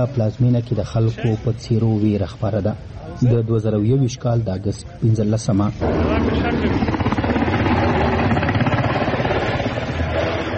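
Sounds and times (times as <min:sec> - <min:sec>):
speech: 0:00.0 - 0:07.8
helicopter flying over Kabul, rotor thumping with engine roar: 0:05.8 - 0:10.5.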